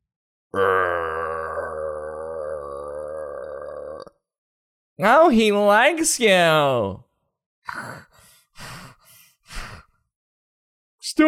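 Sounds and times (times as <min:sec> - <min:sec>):
speech: 0:00.5 - 0:01.1, 0:05.0 - 0:07.0
person imitating a dog growling: 0:00.6 - 0:04.2, 0:07.7 - 0:08.1.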